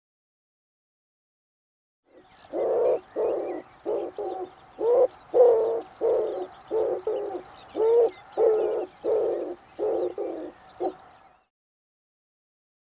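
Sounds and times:
bird giving low hoarse cooing notes: 0:02.2 - 0:11.1.

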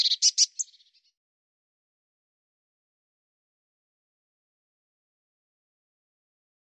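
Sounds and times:
Eurasian blue tit calling: 0:00.0 - 0:01.0.

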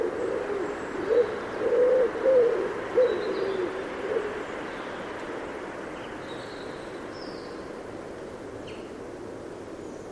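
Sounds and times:
bird giving low hollow coos: 0:00.0 - 0:04.5
steady background hiss: 0:00.0 - 0:10.1.

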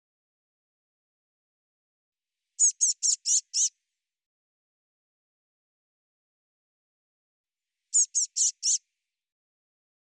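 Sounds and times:
Eurasian blue tit giving high rapid notes: 0:02.6 - 0:03.7, 0:08.0 - 0:08.8.

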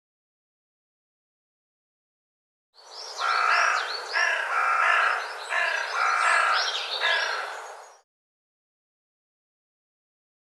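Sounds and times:
bird raspy buzzy call: 0:03.2 - 0:07.7.

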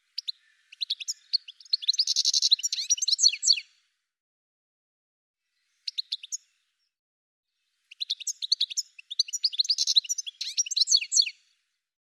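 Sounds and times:
bird chirps: 0:00.0 - 0:03.7, 0:05.6 - 0:06.9, 0:07.9 - 0:11.5.

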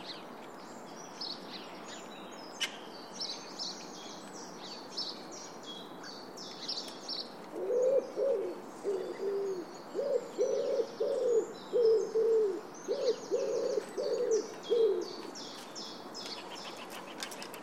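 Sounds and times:
thin higher chirping from other birds: 0:00.0 - 0:17.6
bird giving mellow hooting notes: 0:07.6 - 0:15.2.

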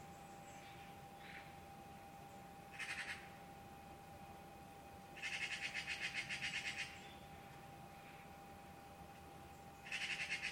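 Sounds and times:
steady hum: 0:00.0 - 0:10.4
bird call of rapid chattering pulses: 0:02.7 - 0:03.2, 0:05.2 - 0:07.0, 0:09.8 - 0:10.4.

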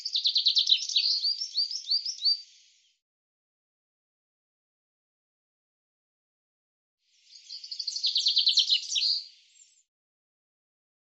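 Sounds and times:
Common chaffinch song: 0:00.0 - 0:03.0, 0:07.1 - 0:09.9.

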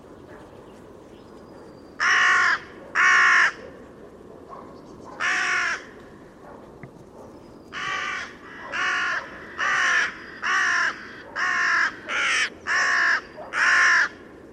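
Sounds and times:
low background noise: 0:00.0 - 0:14.5
bird giving harsh hoarse cawing calls: 0:02.0 - 0:03.6, 0:05.2 - 0:06.3, 0:07.7 - 0:14.3.

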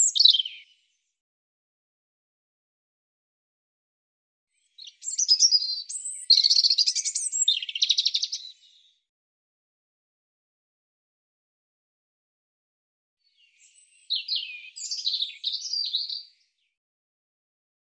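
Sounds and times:
European robin song: 0:00.0 - 0:01.1, 0:04.5 - 0:09.1, 0:13.2 - 0:16.8.

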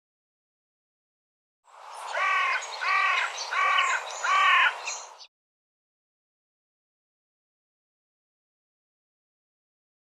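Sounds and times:
bird giving hoarse harmonic caw-like calls: 0:02.1 - 0:05.1.

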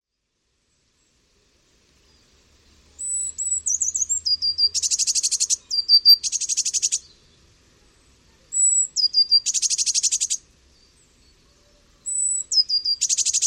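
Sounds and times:
Eurasian blue tit song: 0:03.0 - 0:13.4.

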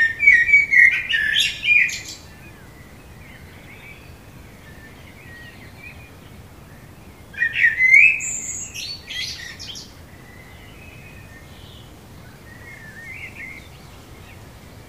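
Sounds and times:
common blackbird Turdus merula fluty warble ending in a high twitter: 0:00.0 - 0:14.8.

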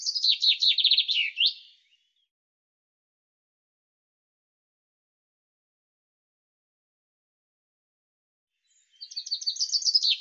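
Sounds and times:
common chaffinch song: 0:00.0 - 0:02.3, 0:08.6 - 0:10.1.

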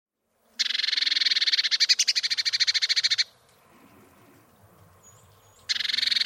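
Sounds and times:
Eurasian blue tit scolding churr: 0:00.6 - 0:04.4, 0:05.1 - 0:06.2.

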